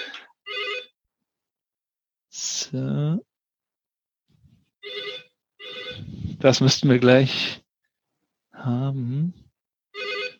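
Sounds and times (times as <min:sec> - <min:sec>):
office telephone ringing in a meeting room: 0:00.5 - 0:00.9, 0:04.8 - 0:06.1, 0:10.0 - 0:10.3
speech: 0:02.7 - 0:03.3, 0:06.4 - 0:07.6, 0:08.6 - 0:09.4.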